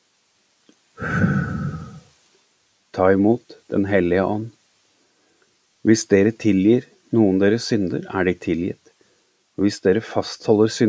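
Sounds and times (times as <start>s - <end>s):
long breathy exhale of a man: 1.0s - 2.1s
speech: 3.0s - 4.6s, 5.8s - 8.8s, 9.6s - 10.8s.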